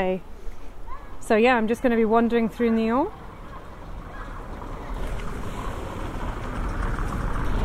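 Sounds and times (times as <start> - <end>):
speech: 0.0 - 0.3, 1.3 - 3.2
car rolling across a stone bridge in Nyons on a very hot day: 2.1 - 7.6.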